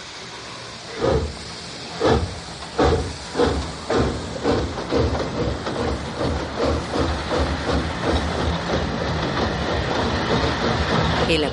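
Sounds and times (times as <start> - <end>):
constant hiss: 0.0 - 7.2
train pulling away with wheels clattering: 0.9 - 11.5.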